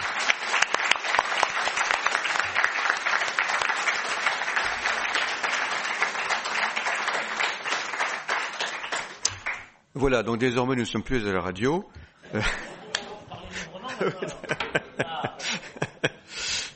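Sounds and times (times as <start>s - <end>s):
audience applause: 0.0s - 9.7s
speech: 10.0s - 12.7s, 14.0s - 15.2s
laughter: 12.2s - 16.3s.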